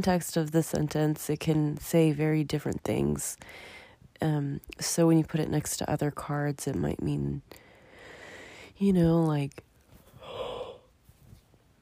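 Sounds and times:
speech: 0.0 - 7.6, 8.8 - 9.7
quiet breathing: 3.4 - 4.2, 7.5 - 8.8, 9.9 - 11.2
person yawning: 10.2 - 10.9.

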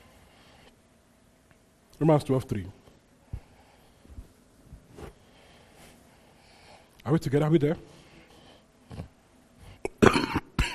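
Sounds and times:
speech: 2.0 - 2.8, 7.1 - 8.0
person clearing throat of a lingering irritation: 9.8 - 10.7
person coughing: 9.8 - 10.7.

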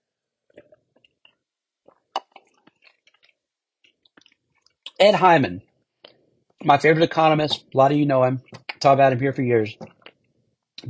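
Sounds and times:
person sipping and swallowing water: 0.5 - 4.8
speech: 5.0 - 5.7, 6.6 - 9.9.

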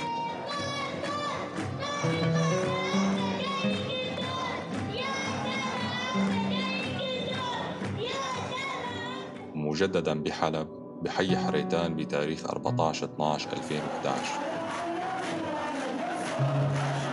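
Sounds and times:
crowd of children chanting at a street protest in Deir Baalba Homs: 0.0 - 9.3, 15.5 - 17.1
speech: 2.0 - 2.4, 9.8 - 14.5.

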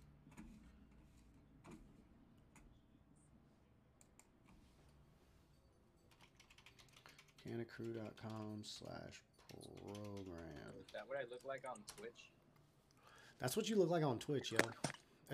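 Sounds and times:
typing on a computer keyboard: 6.1 - 12.2
speech: 7.4 - 12.4, 13.4 - 15.3.

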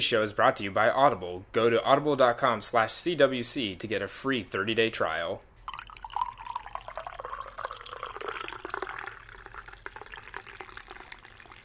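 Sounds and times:
speech: 0.0 - 5.5
coffee being poured in a steady stream: 5.7 - 11.6.

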